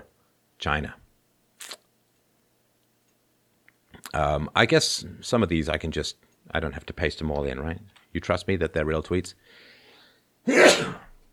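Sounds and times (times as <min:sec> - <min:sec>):
speech: 0:00.6 - 0:01.0, 0:04.1 - 0:09.7, 0:10.4 - 0:11.0
loud sneeze: 0:10.5 - 0:11.2.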